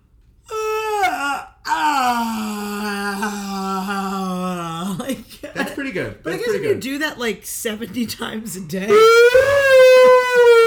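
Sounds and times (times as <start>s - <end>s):
person yawning with an exaggerated drawn-out yawn: 0.5s - 4.8s
speech: 5.9s - 10.2s.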